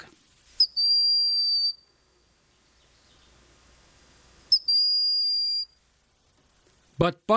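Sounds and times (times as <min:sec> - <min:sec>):
Broad-winged Hawk whistled call: 0:00.6 - 0:01.9, 0:04.5 - 0:05.8.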